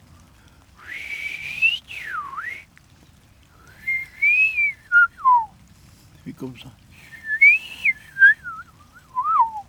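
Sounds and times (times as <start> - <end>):
person whistling an imitation of blackbird song: 0.9 - 2.6, 3.8 - 5.5, 7.1 - 9.6
speech: 6.4 - 6.9.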